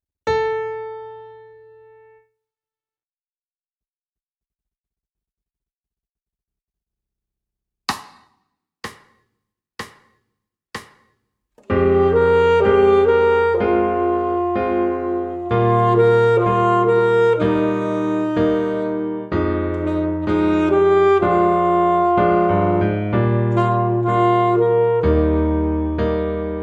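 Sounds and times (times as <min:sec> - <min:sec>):
multiple saxophones: 0:11.6 - 0:26.5.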